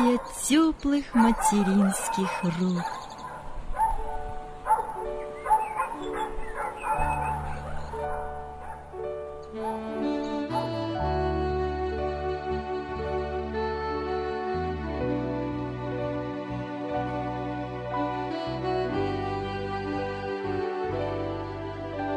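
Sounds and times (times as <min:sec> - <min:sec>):
dog barking joyfully: 0:00.0 - 0:08.9, 0:09.6 - 0:09.8
speech: 0:00.2 - 0:03.0
steady music: 0:03.2 - 0:22.1.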